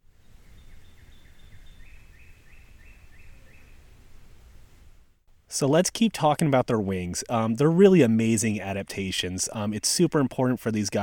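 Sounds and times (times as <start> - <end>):
songbirds singing in a spruce forest: 0.0 - 4.4
wind-like noise: 0.0 - 11.0
speech: 5.5 - 11.0.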